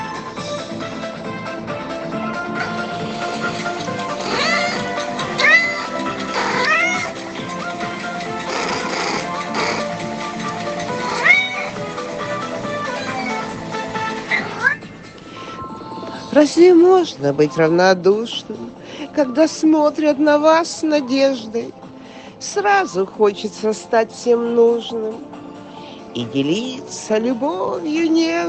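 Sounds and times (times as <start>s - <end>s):
steady sustained music: 0.0s - 28.4s
cat meowing softly: 4.2s - 7.2s, 11.0s - 11.8s, 12.8s - 13.6s, 14.4s - 14.8s
speech: 16.4s - 21.8s, 22.4s - 25.4s, 26.2s - 28.4s.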